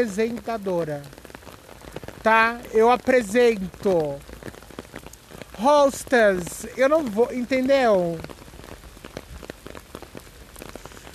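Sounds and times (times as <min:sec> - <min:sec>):
speech: 0:00.0 - 0:01.2, 0:02.2 - 0:04.3, 0:05.6 - 0:08.3
heavy rain falling: 0:00.0 - 0:11.1.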